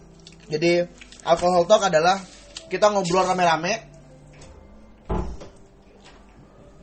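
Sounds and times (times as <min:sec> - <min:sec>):
speech: 0:00.5 - 0:03.9
wooden door swinging open and knocking shut at lodgings in Singaraja: 0:04.4 - 0:05.6.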